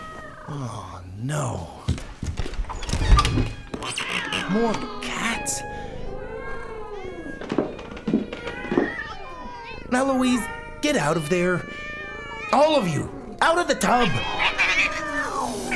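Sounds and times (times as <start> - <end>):
speech: 0.5 - 2.0, 3.3 - 5.8, 9.9 - 11.8, 12.5 - 14.4
many cats meowing: 3.4 - 15.7.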